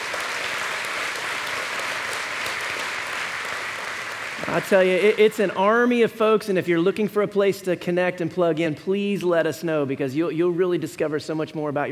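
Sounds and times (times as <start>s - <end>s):
large crowd applauding: 0.0s - 5.9s
speech: 4.4s - 11.9s.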